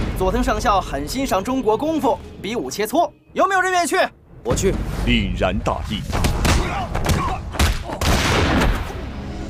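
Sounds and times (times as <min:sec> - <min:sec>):
speech: 0:00.2 - 0:06.9
gunshots in a dramatic film scene: 0:06.1 - 0:09.1.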